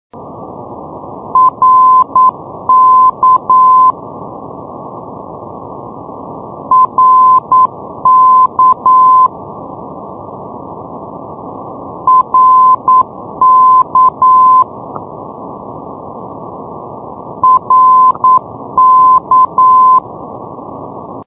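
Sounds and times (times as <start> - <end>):
NDB radio beacon signal in Reykjavik: 1.4 - 4.0, 6.7 - 9.3, 12.1 - 14.7, 17.4 - 20.0.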